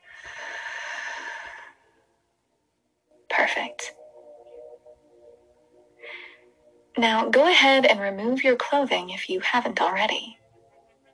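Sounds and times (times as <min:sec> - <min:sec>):
long deep breath in and out: 0:00.0 - 0:02.1, 0:06.0 - 0:06.6
speech: 0:03.4 - 0:04.0, 0:07.0 - 0:10.4.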